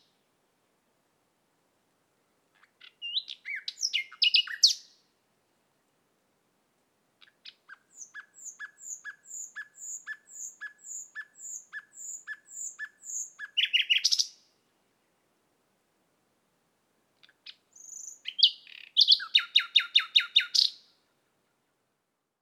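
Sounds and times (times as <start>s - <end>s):
common nightingale Luscinia megarhynchos singing: 2.6s - 5.0s, 7.2s - 14.5s, 17.2s - 21.0s.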